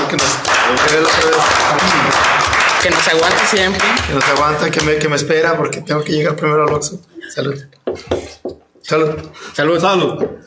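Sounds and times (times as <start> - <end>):
dense applause: 0.0 - 5.0
speech: 0.1 - 10.4.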